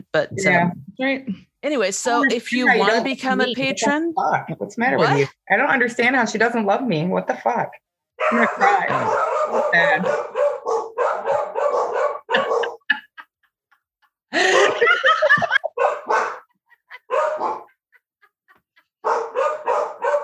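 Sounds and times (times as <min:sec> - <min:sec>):
speech: 0:00.1 - 0:10.4
laughter: 0:08.2 - 0:10.1, 0:12.2 - 0:19.2
several dogs barking in rapid overlapping bursts: 0:08.2 - 0:13.1, 0:14.4 - 0:17.8, 0:18.8 - 0:20.2.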